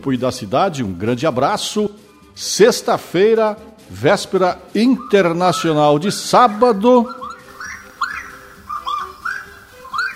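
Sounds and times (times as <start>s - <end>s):
speech: 0.0s - 7.2s
saracura wood-rail calling: 4.2s - 10.1s.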